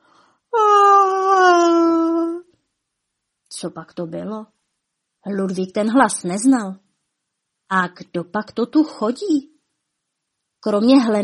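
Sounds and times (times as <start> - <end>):
long voiced yawn: 0.5 - 2.5
speech: 3.6 - 4.6, 5.2 - 6.8, 7.7 - 9.5, 10.6 - 11.2.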